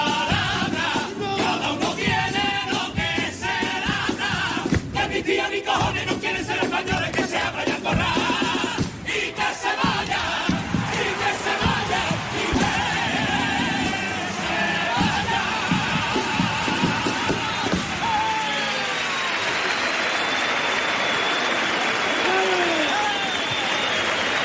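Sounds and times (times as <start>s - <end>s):
crowd cheers and shouts in a big indoor hall: 0.2s - 24.4s
large crowd applauding in a big indoor hall: 9.1s - 24.4s
whoops and yells: 16.4s - 24.4s.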